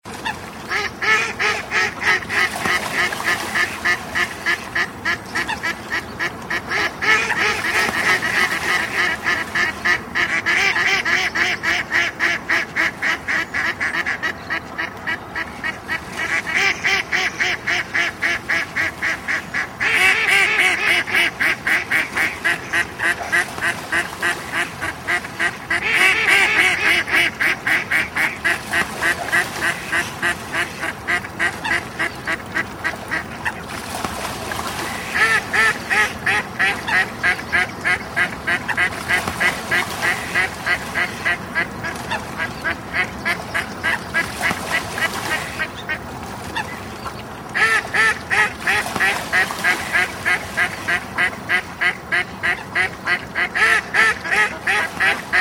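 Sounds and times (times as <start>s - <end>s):
duck quacking: 0.2s - 33.7s, 34.8s - 55.4s.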